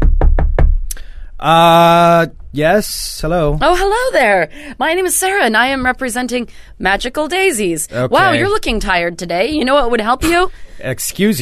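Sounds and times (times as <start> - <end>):
knocking on a door: 0.0 - 0.9
speech: 1.4 - 11.4.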